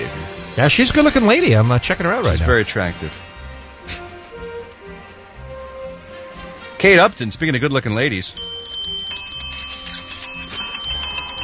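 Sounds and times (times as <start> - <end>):
speech: 0.6 - 3.2, 6.8 - 8.6
front desk service bell struck repeatedly: 8.4 - 11.4.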